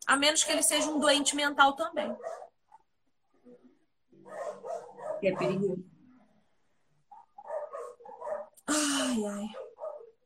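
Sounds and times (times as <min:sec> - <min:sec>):
speech: 0:00.1 - 0:02.4, 0:05.2 - 0:05.9, 0:08.7 - 0:09.6
dogs barking: 0:02.0 - 0:02.8, 0:04.2 - 0:05.8, 0:07.1 - 0:08.6, 0:09.5 - 0:10.2.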